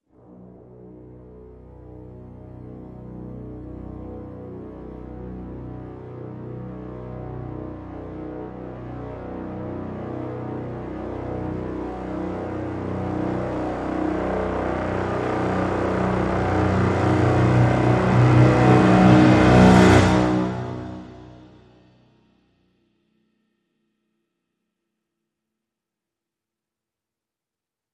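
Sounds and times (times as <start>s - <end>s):
low brass crescendo swell: 0.2s - 22.0s.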